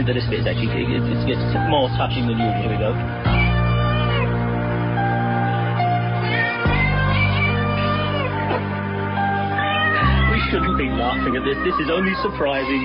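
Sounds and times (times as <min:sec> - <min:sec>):
speech: 0:00.0 - 0:03.4, 0:10.5 - 0:12.8
steady musical backing: 0:00.0 - 0:12.8
cat meows pitched into a melody: 0:03.3 - 0:04.3, 0:05.7 - 0:08.6, 0:09.2 - 0:12.8.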